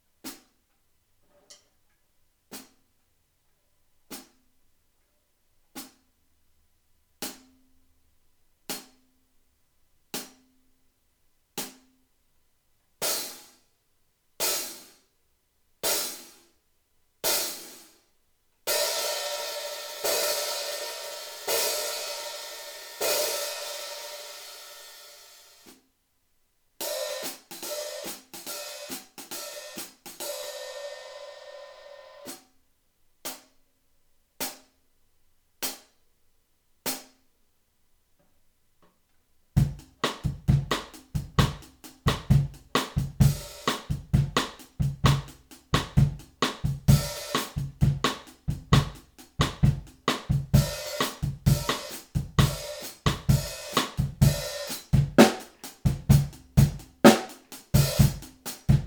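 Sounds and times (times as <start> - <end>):
14 hi-hat cymbal: 18.7 - 25.8, 26.8 - 32.5, 39.6 - 58.8.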